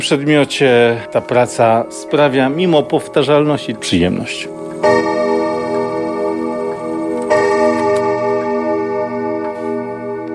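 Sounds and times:
speech: 0.0 - 5.5
many clocks ticking in a clockmaker's workshop: 0.0 - 10.3
sustained ringing hum: 0.0 - 10.3.

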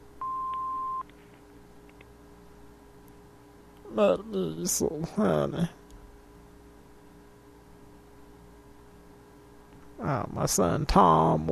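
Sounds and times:
low constant hum: 0.0 - 11.5
answering machine beep on a home phone line: 0.2 - 1.0
faint clicks: 0.5 - 2.1
speech: 3.9 - 5.8, 10.1 - 11.5.

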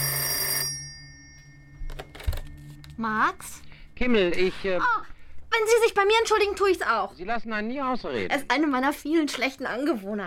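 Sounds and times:
telephone ringing as a call is placed: 0.0 - 3.0
speech: 3.0 - 10.2.

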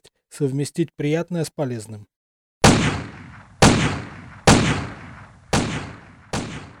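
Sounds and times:
speech: 0.4 - 2.1
pistol shots fired at metal target plates: 2.6 - 6.7.

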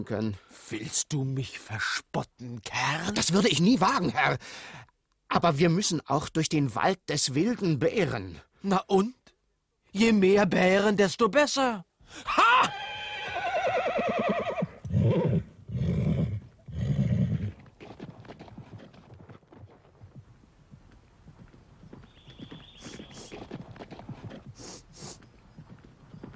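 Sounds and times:
speech: 0.0 - 9.2, 9.9 - 12.8
horses whinnying: 12.3 - 19.2, 22.3 - 25.3
horses with riders clip-clopping in a trot: 16.5 - 26.3.

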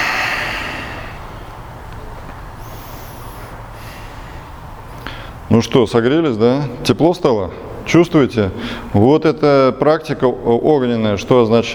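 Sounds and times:
soft forceful exhale through the mouth during a kriya yoga breathing exercise: 0.0 - 1.4, 2.6 - 4.5
speech: 5.5 - 11.7.

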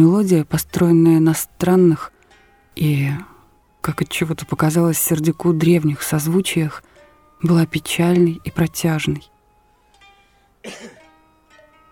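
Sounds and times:
speech: 0.0 - 2.2, 2.8 - 9.3, 10.6 - 11.0
man coughing: 10.6 - 11.1.

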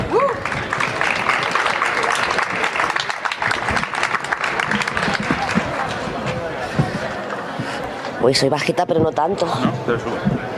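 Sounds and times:
audience applause at a poetry and music recital: 0.0 - 7.5
speech: 8.2 - 10.4.

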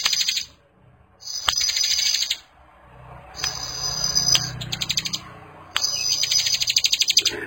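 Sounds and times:
bar-winged prinia singing high sizzling trills: 0.0 - 0.6, 1.2 - 2.5, 3.4 - 7.4.

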